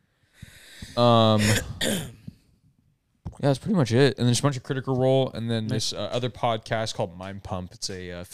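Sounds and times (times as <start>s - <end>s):
sharp breathy coughs: 0.8s - 2.3s
throaty voiced rasp: 1.0s - 2.0s
speech: 1.0s - 2.2s, 3.4s - 8.3s.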